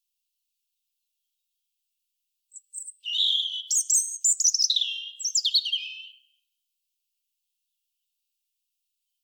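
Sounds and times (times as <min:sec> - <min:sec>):
European robin Erithacus rubecula singing: 0:02.5 - 0:06.4.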